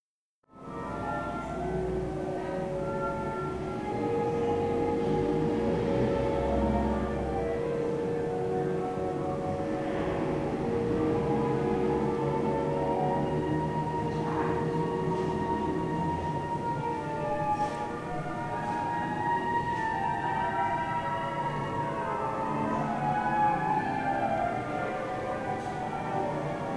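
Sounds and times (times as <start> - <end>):
city soundscape in Madrid: 0.6 - 26.7.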